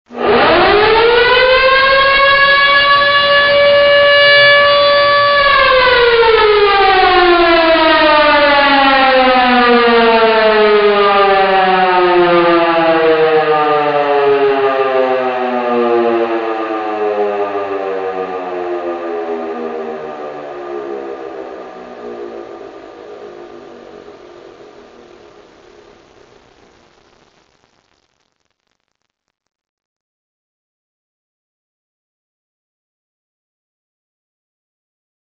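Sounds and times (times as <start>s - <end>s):
model 2 580 air raid sirens: 0.1s - 26.8s.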